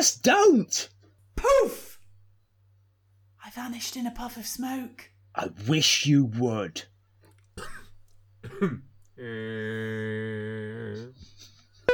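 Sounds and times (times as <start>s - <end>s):
speech: 0.0s - 1.9s, 3.5s - 6.9s, 7.6s - 7.8s, 8.4s - 11.3s
person coughing: 7.6s - 9.6s
droning vocal tone: 9.2s - 11.3s.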